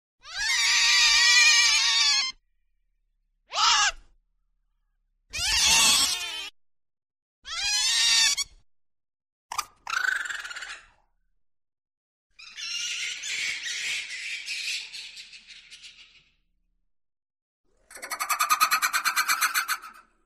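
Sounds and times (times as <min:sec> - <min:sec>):
wildlife shrieks and cries: 0:00.2 - 0:02.4, 0:03.5 - 0:04.1, 0:05.3 - 0:06.6, 0:07.4 - 0:08.6, 0:09.5 - 0:11.1, 0:12.4 - 0:16.4, 0:17.9 - 0:20.1.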